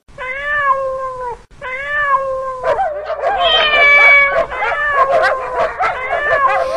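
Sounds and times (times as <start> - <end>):
cat meowing: 0.2 - 6.7
dogs barking and yipping: 2.6 - 6.7.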